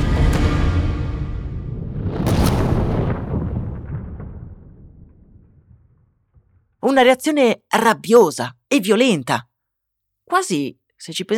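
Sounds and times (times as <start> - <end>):
heavy bomb blast with deep rumbling boom: 0.0 - 6.8
speech: 6.9 - 9.5, 10.3 - 11.3.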